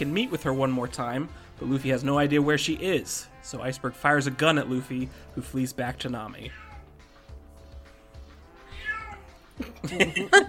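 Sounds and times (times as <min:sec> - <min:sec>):
speech: 0:00.0 - 0:06.7, 0:09.6 - 0:10.4
cat meowing and yowling loudly: 0:06.4 - 0:07.0, 0:08.4 - 0:09.6
laughter: 0:09.6 - 0:10.4.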